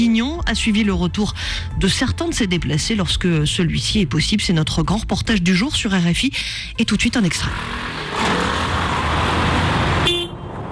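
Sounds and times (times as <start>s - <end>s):
speech: 0.0s - 8.0s
dense highway traffic jam rumbling: 1.3s - 10.7s
car horns tooting: 9.9s - 10.6s.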